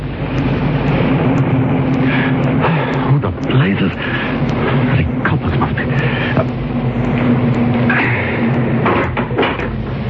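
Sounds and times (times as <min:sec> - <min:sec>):
car engine rumbling as the car drives into a garage: 0:00.0 - 0:10.0.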